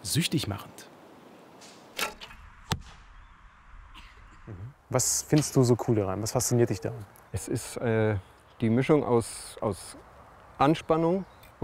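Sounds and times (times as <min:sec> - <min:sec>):
speech: 0:00.0 - 0:00.8, 0:04.5 - 0:11.6
arrow striking a target: 0:01.6 - 0:03.2
bow releasing with a sharp whoosh: 0:01.6 - 0:03.2.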